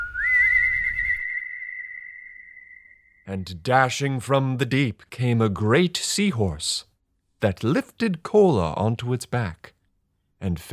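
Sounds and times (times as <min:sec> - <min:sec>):
person whistling: 0:00.0 - 0:03.0
speech: 0:03.3 - 0:09.7, 0:10.4 - 0:10.7.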